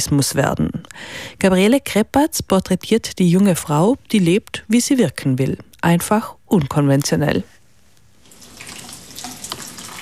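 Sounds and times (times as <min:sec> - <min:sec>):
speech: 0:00.0 - 0:07.6
water pouring as flowers are watered: 0:08.2 - 0:09.9.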